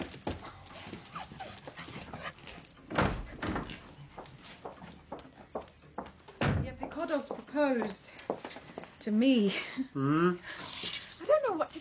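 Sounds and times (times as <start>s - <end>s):
dogs: 0.0s - 5.8s
short clattering and scuffling sounds: 0.0s - 8.7s
speech: 7.1s - 8.1s, 9.0s - 10.6s.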